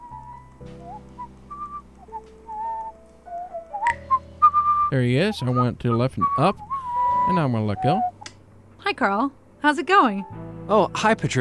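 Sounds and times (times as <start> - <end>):
melodic whistled tune from a game character: 0.0 - 8.4
low sustained musical drone: 0.0 - 11.3
speech: 4.9 - 6.7, 7.3 - 8.1, 8.8 - 11.3.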